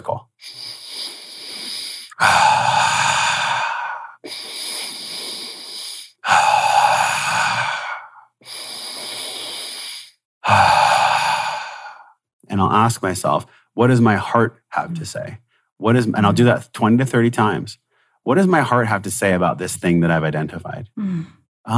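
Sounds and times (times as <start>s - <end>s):
person circular breathing, inhaling through nose and exhaling through mouth: 0.4s - 12.2s, 17.9s - 18.2s
speech: 12.7s - 21.7s.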